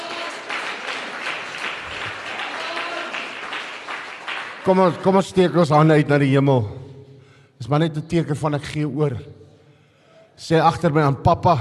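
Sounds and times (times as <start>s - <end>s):
congregation clapping in praise at a revival service in a correctional centre: 0.0s - 5.2s
speech: 4.6s - 6.8s, 7.7s - 9.4s, 10.4s - 11.5s.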